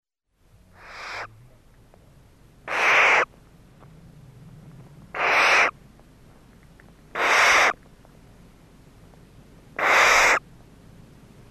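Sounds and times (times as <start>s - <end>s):
Barn owl giving harsh hissing screeches: 0.8s - 1.3s, 2.7s - 3.3s, 5.1s - 5.8s, 7.1s - 7.8s, 9.8s - 10.4s.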